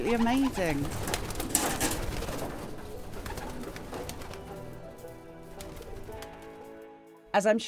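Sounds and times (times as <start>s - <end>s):
speech: 0.0s - 1.4s, 7.4s - 7.6s
pigeons cooing: 0.0s - 4.6s.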